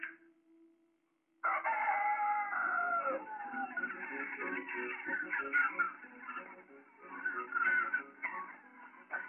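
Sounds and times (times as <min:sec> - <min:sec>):
rooster crowing: 0:01.4 - 0:04.0
chickens clucking and squawking: 0:01.4 - 0:09.2.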